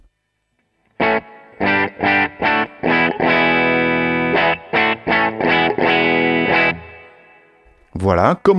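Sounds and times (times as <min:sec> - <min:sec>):
distorted instrument playing punchy chord stabs and sustained chords with reverb: 0:01.0 - 0:07.6
speech: 0:08.2 - 0:08.5.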